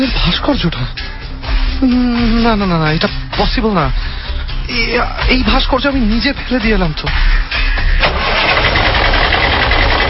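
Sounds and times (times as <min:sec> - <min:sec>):
speech: 0:00.0 - 0:01.2, 0:01.8 - 0:07.6
car engine starting: 0:07.7 - 0:10.0.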